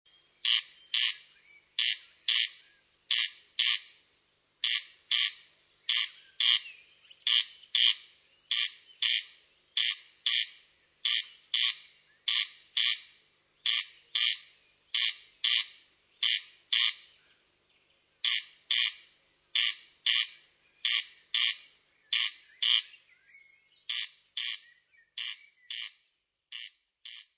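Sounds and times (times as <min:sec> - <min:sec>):
corncrake calling: 0:00.1 - 0:17.5, 0:18.2 - 0:27.3.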